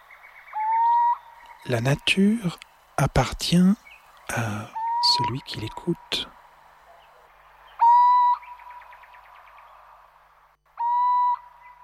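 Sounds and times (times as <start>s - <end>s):
little owl hooting at night: 0.2s - 1.7s, 4.3s - 6.3s, 6.9s - 10.0s, 10.8s - 11.8s
speech: 1.6s - 6.4s.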